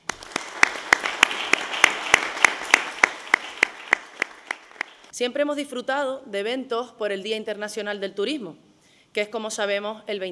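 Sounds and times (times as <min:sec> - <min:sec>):
sharp evenly spaced claps: 0:00.0 - 0:05.1
speech: 0:05.2 - 0:10.2.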